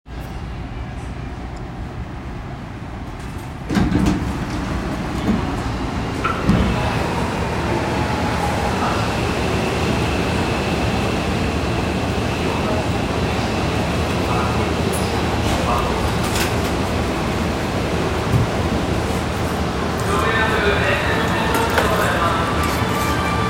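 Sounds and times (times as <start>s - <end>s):
Yurakucho Line train sounds at Iidabashi west: 0.1s - 23.4s.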